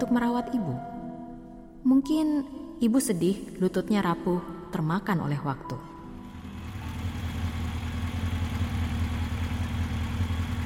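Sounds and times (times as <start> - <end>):
speech: 0.0 - 1.0, 1.8 - 5.9
motorcycle engine idling: 6.2 - 10.6.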